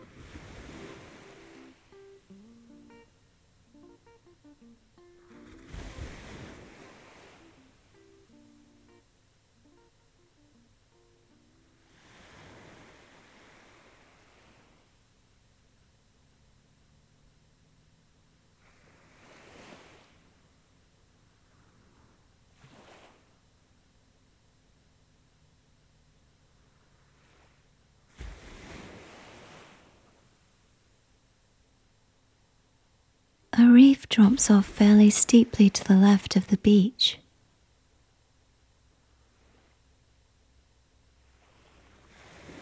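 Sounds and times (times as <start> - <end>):
gentle waves lapping against a shore: 0.0 - 31.4, 38.9 - 42.6
light wind: 0.0 - 32.6
speech: 33.6 - 37.2.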